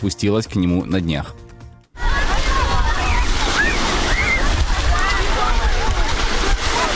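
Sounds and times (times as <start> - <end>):
speech: 0.0 - 1.5
Sea of Azov water sloshing against the shore at Mariupol in winter: 2.0 - 6.9
low rumbling: 2.0 - 6.9.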